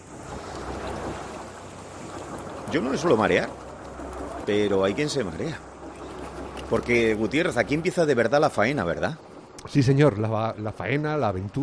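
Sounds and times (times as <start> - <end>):
sea waves washing around a stopped fishing boat: 0.0 - 11.6
speech: 2.7 - 3.6, 4.5 - 5.7, 6.7 - 11.6.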